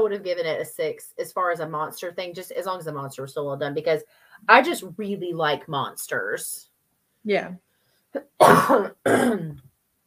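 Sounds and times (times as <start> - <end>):
speech: 0.0 - 9.7
harsh raspy coughs from a lingering cough after COVID: 8.4 - 9.6.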